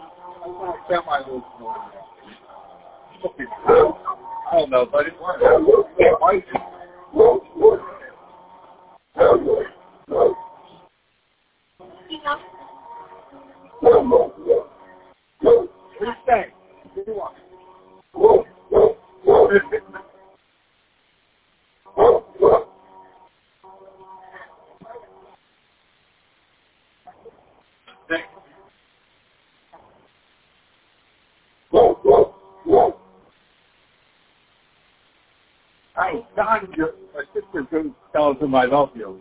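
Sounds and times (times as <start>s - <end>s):
speech: 0.4s - 2.5s, 3.2s - 7.9s, 9.2s - 9.7s, 12.2s - 12.6s, 13.8s - 14.6s, 15.5s - 17.4s, 19.5s - 20.0s, 36.0s - 39.1s
dog on a path barking at a person: 3.6s - 4.2s, 5.3s - 6.3s, 7.1s - 8.1s, 9.2s - 10.5s, 13.8s - 14.8s, 15.4s - 15.8s, 18.2s - 19.7s, 21.9s - 22.8s, 31.7s - 33.0s.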